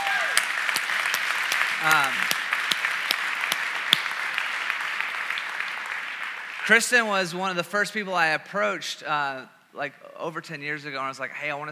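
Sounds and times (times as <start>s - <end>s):
crowd applauding: 0.0s - 7.4s
speech: 6.7s - 11.7s.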